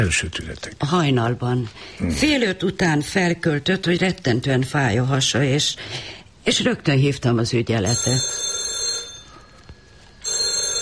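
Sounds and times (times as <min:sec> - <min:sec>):
speech: 0:00.0 - 0:08.5
telephone ringing: 0:07.8 - 0:09.6, 0:10.2 - 0:10.8.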